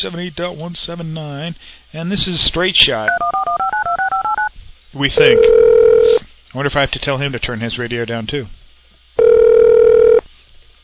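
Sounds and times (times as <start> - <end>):
speech: 0.0 - 3.8, 4.9 - 8.6
electronic ringback tone of an outgoing internet phone call: 3.1 - 4.5, 5.2 - 6.2, 9.2 - 10.2.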